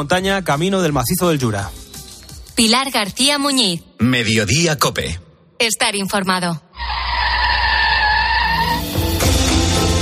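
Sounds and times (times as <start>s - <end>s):
speech: 0.0s - 1.8s, 2.6s - 7.0s
car braking hard at a traffic light with tyres squealing: 6.8s - 9.4s.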